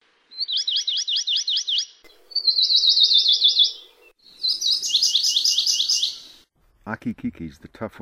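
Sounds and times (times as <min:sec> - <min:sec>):
amakihi trilling: 0:00.3 - 0:06.4
speech: 0:06.9 - 0:07.9.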